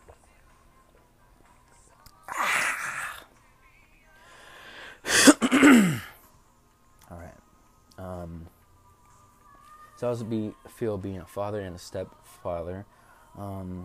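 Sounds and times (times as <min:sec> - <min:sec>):
person with GERD clearing throat: 0:05.1 - 0:06.2
speech: 0:10.0 - 0:13.8.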